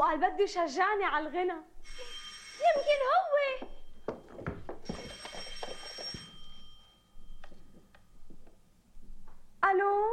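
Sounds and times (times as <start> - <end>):
speech: 0.2 - 3.7
telephone ringing: 1.8 - 8.4
knocks and clatter: 3.6 - 6.3.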